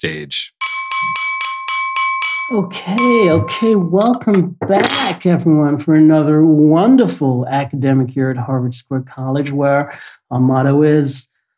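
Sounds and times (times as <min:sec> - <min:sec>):
speech: 0:00.0 - 0:01.2, 0:02.5 - 0:11.3
glass tapped to call attention: 0:00.6 - 0:05.2.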